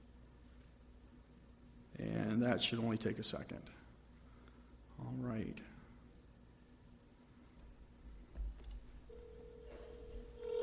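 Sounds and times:
low hum: 0.0 - 10.6
speech: 2.0 - 3.9, 5.3 - 5.7
cell phone electronic ringing tone through a speaker: 9.1 - 10.6.

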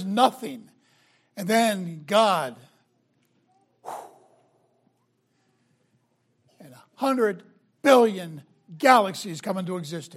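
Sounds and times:
speech: 0.0 - 0.7, 1.4 - 2.7, 6.6 - 10.1
forceful exhaled breath: 3.8 - 4.4.

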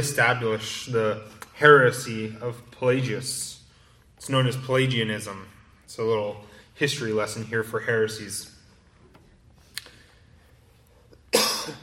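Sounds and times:
speech: 0.0 - 3.6, 4.2 - 8.5
harsh cough: 11.3 - 11.8.

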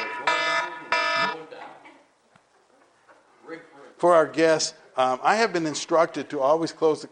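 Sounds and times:
harsh electronic alarm beeps set to close a class: 0.0 - 1.4
speech: 4.0 - 7.1.

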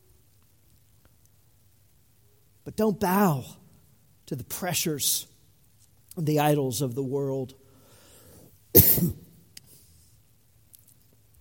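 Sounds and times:
speech: 2.7 - 3.6, 4.3 - 5.3, 6.2 - 7.6, 8.7 - 9.2
harsh cough through a face mask: 8.7 - 9.4.

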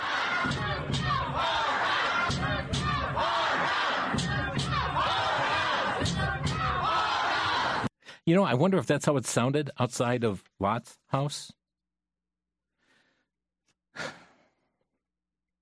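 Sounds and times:
large crowd shouting and roaring: 0.0 - 7.9
speech: 8.3 - 11.6.

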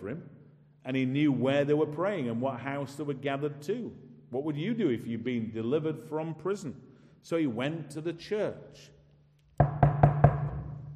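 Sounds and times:
speech: 0.0 - 9.0
knocking on a wooden door: 9.6 - 10.8.

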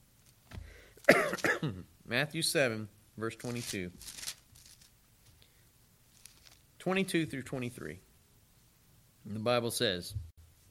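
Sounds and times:
cough: 1.0 - 1.9
man clearing his throat: 1.0 - 1.9
speech: 1.1 - 4.3, 6.8 - 8.1, 9.2 - 10.3.

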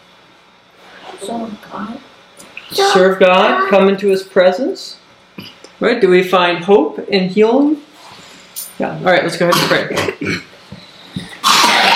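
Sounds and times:
speech: 1.2 - 2.1, 2.7 - 7.8, 8.8 - 10.5
loud harsh rasping cough burst: 9.5 - 10.5, 11.2 - 11.9
soft coughs from audience members: 9.5 - 10.6.

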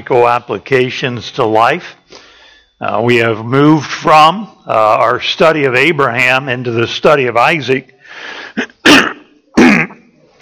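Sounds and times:
speech: 0.0 - 2.0, 2.8 - 8.8
throat clearing: 8.6 - 10.3.

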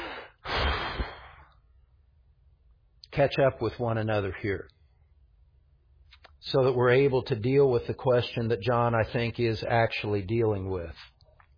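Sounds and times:
deep breath taken during a group pause: 0.0 - 1.6
speech: 3.2 - 4.8, 6.4 - 11.1.

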